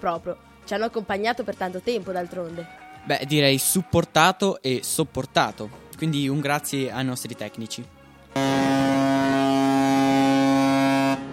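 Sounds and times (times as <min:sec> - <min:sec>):
speech: 0:00.0 - 0:08.8
long deep ship's horn blast: 0:08.3 - 0:11.3.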